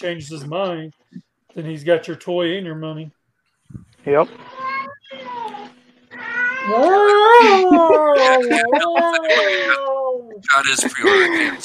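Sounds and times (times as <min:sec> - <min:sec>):
speech: 0:00.0 - 0:04.6, 0:06.6 - 0:11.6
pet cat meowing: 0:04.4 - 0:10.1
laughter: 0:07.0 - 0:09.8, 0:10.5 - 0:11.6.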